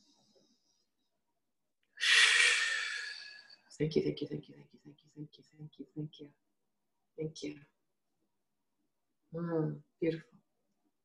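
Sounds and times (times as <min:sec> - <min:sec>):
deep breath in: 0:02.0 - 0:03.6
speech: 0:03.8 - 0:06.5, 0:07.2 - 0:07.8, 0:09.3 - 0:10.4.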